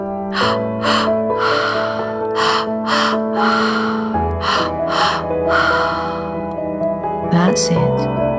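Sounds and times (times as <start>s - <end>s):
deep forceful breathing during breathwork exercise: 0.0s - 6.5s
sustained musical drone: 0.0s - 6.5s
speech: 7.5s - 8.2s.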